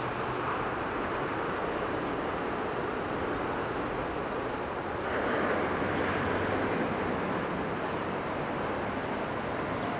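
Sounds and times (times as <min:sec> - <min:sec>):
Golden-crowned kinglet calls: 0:00.0 - 0:00.3, 0:02.0 - 0:03.2, 0:06.5 - 0:08.1, 0:09.1 - 0:09.3
constant broadband noise: 0:00.0 - 0:09.9.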